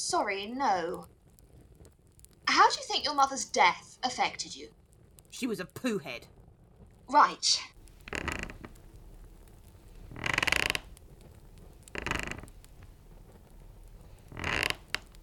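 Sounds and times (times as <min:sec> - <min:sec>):
speech: 0:00.0 - 0:01.2, 0:02.5 - 0:06.4, 0:07.1 - 0:08.3
wooden chair creaking as it tips on two legs: 0:07.8 - 0:15.2.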